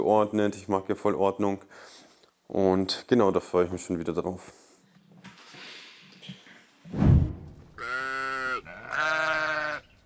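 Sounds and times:
speech: 0.0 - 4.6
faint noise: 0.0 - 10.0
soft thump: 6.9 - 7.8
sheep bleating: 7.8 - 10.0.

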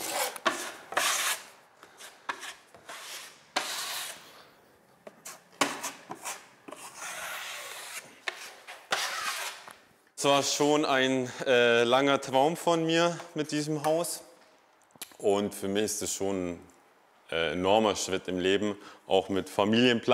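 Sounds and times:
sanding a wall during interior renovation of a house: 0.0 - 4.2, 5.3 - 9.6
speech: 10.2 - 14.3, 15.2 - 16.7, 17.3 - 20.1.

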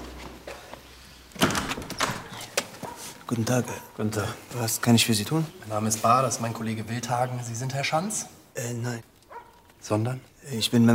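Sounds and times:
door latch clicks and rattles: 1.3 - 2.7
speech: 3.3 - 9.1, 9.8 - 10.9.

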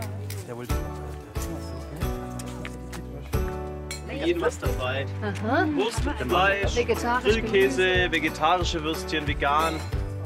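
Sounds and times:
speech: 0.5 - 1.2, 4.2 - 10.0
wine glasses clinking in a toast: 3.8 - 4.6, 9.6 - 10.1.

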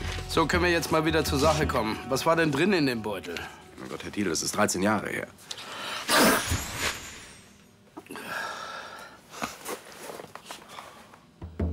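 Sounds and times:
speech: 0.3 - 6.2
person sneezing: 6.0 - 6.6.

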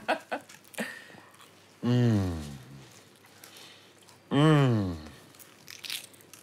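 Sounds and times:
crunching as someone bites into a flaky croissant: 0.3 - 6.4
person humming appreciatively: 1.8 - 2.9, 4.3 - 5.2.

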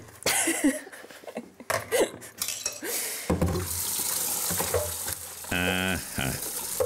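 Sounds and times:
speech: 0.6 - 0.9
dishes clinking and knocking in a sink: 2.4 - 3.7, 4.4 - 5.1
hot water gushing from a tap: 3.6 - 6.8.

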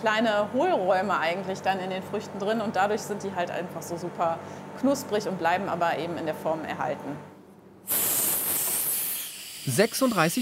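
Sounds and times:
speech: 0.0 - 7.3, 9.6 - 10.4
air hissing into a freeze-dryer chamber holding strawberries: 7.8 - 10.4.

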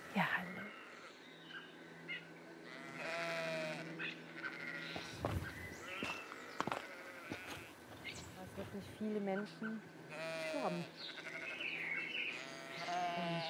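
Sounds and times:
speech: 0.2 - 0.7, 9.0 - 10.0, 10.6 - 11.2
grazing sheep bleating faintly by a house along a walking trail: 0.2 - 1.2, 2.6 - 7.8, 10.1 - 13.4.

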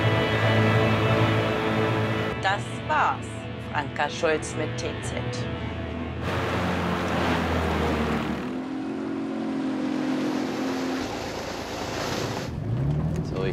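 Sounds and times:
motorboat engines droning on a lake: 0.0 - 12.6
speech: 2.5 - 6.5
rushing wash of water: 6.2 - 12.5.

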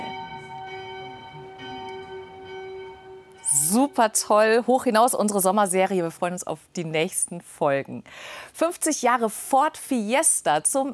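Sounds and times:
church bells ringing the midday peal: 0.0 - 5.0
speech: 4.0 - 10.9.

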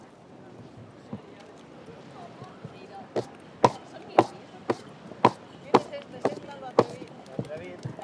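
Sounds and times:
low murmur of crowd noise: 0.0 - 8.0
horse hooves clip-clopping on hard ground in a town procession in Fornells: 2.4 - 8.0.

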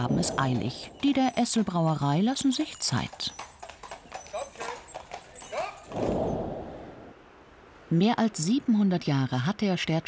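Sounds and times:
speech: 0.0 - 3.5, 7.9 - 10.0
horse hooves clip-clopping on a hard surface: 0.0 - 6.2
horse neighing: 3.3 - 6.4.

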